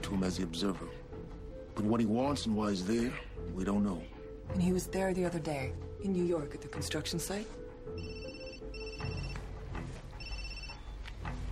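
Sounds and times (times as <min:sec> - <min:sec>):
speech: 0:00.1 - 0:01.1, 0:01.8 - 0:08.1
telephone ringing in electronic bursts: 0:08.0 - 0:09.6, 0:10.2 - 0:11.1.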